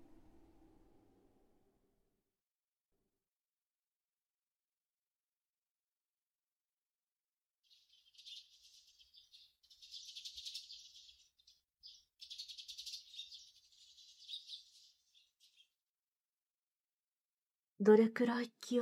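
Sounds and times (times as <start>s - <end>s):
chorus of small birds chirping and twittering in the morning: 7.7s - 15.8s
speech: 17.8s - 18.8s.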